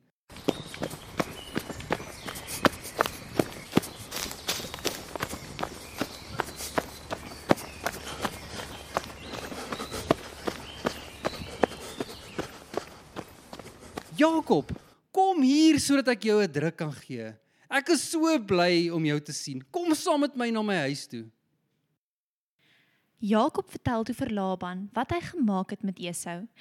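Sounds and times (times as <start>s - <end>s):
footsteps of a man running: 0.3s - 14.9s
speech: 14.2s - 14.8s, 15.4s - 21.4s, 23.2s - 26.5s.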